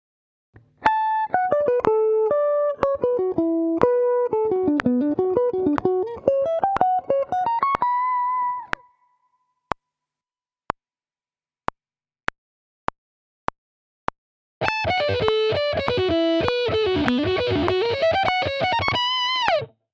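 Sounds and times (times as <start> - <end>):
guitar sweep picking: 0.8 - 8.7, 14.6 - 19.7.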